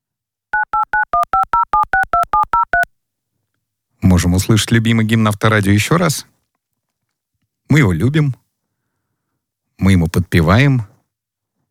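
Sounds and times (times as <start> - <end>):
touch-tone telephone keypad two-tone beeps while dialing: 0.6 - 2.9
speech: 4.2 - 6.3, 7.7 - 8.4, 9.8 - 10.9.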